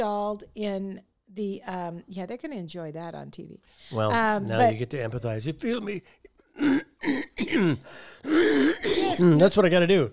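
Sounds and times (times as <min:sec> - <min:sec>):
speech: 0:00.0 - 0:10.1
man clearing his throat: 0:06.6 - 0:09.3.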